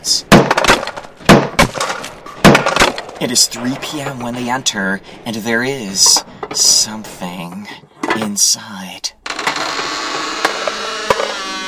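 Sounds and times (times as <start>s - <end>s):
steel-barred wooden door smashed in by two people: 0.3s - 3.2s, 9.3s - 11.6s
speech: 3.2s - 9.2s.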